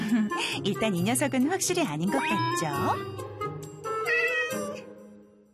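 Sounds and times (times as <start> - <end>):
speech: 0.1 - 3.3
cat meowing in drawn-out wavering calls: 2.1 - 3.0, 4.0 - 4.9.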